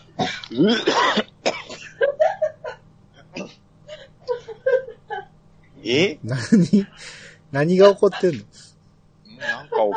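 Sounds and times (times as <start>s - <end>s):
speech: 0.2s - 1.2s, 5.9s - 8.5s
person clearing throat: 0.2s - 2.0s, 3.2s - 3.6s
laughter: 1.9s - 2.8s, 4.3s - 5.3s, 6.3s - 7.2s, 7.9s - 8.6s, 9.4s - 9.9s.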